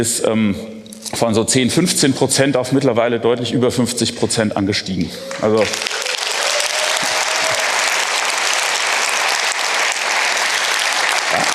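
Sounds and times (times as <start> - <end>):
speech: 0.0 - 6.1
audience applause during a talk: 5.2 - 11.5.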